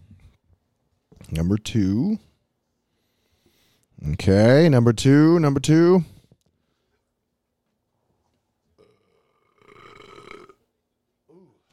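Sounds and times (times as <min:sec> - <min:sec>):
speech: 0:01.3 - 0:02.3, 0:04.0 - 0:06.1
person burping: 0:08.8 - 0:10.6.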